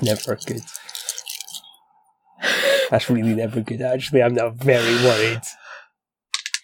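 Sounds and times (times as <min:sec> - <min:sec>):
speech: 0:00.0 - 0:01.0, 0:02.9 - 0:05.6
dice rattling and clattering: 0:00.0 - 0:01.7, 0:06.3 - 0:06.6.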